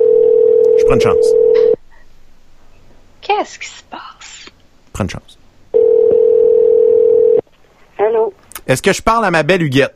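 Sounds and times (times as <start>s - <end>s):
telephone line tone while calling a number: 0.0s - 1.8s, 5.8s - 7.4s
speech: 0.9s - 1.8s, 3.3s - 5.4s, 8.0s - 9.9s.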